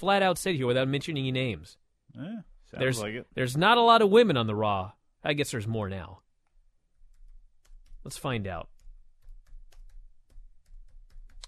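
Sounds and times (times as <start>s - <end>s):
speech: 0.0s - 6.2s, 8.0s - 8.7s
keyboard typing clicks: 8.7s - 11.4s.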